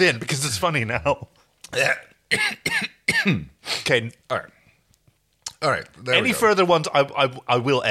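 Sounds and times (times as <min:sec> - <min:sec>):
speech: 0:00.0 - 0:04.6, 0:05.6 - 0:07.9
person giving short voiced throaty coughs: 0:01.7 - 0:03.5.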